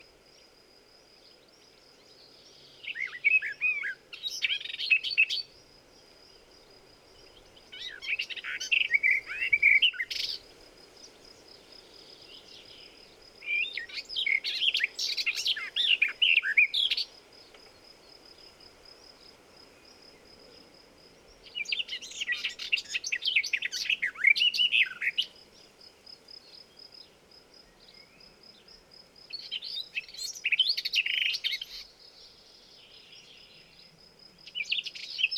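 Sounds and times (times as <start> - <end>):
garden warbler Sylvia borin singing: 2.2 - 5.5, 7.2 - 10.5, 11.4 - 17.8, 21.4 - 25.7, 29.3 - 33.9.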